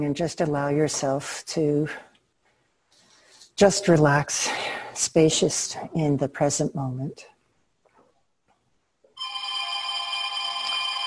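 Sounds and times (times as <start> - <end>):
speech: 0.0 - 2.1, 3.6 - 7.3
telephone ringing with a metallic bell tone: 9.2 - 11.0.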